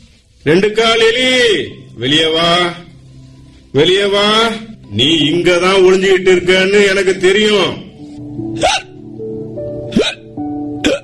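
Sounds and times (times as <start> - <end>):
speech: 0.4 - 2.9, 3.7 - 7.8, 8.6 - 8.9
person hiccuping: 8.6 - 9.0, 9.9 - 11.0.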